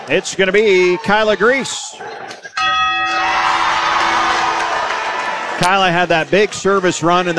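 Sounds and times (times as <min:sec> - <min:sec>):
speech: 0:00.0 - 0:02.2, 0:05.6 - 0:07.3
big crowd cheering and roaring: 0:00.0 - 0:07.3
victory bell strike: 0:02.5 - 0:05.5.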